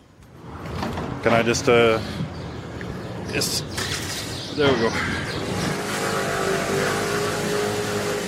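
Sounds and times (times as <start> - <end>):
wind and road noise: 0.0 - 8.2
speech: 1.2 - 2.2, 3.3 - 4.0, 4.6 - 5.4
small scooter motor engine droning while riding: 5.2 - 8.2.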